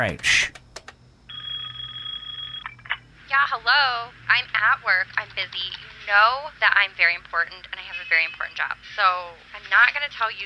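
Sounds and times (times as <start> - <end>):
speech: 0.0 - 0.6, 3.5 - 10.4
steady electronic telephone tone from phone number being dialed: 1.3 - 2.8, 7.8 - 8.6.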